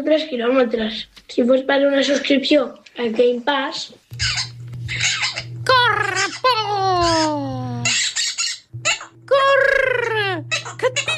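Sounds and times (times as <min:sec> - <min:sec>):
speech: 0:00.0 - 0:05.1
low steady hum: 0:00.0 - 0:11.1
parrot squawking: 0:04.1 - 0:09.2, 0:10.0 - 0:11.1.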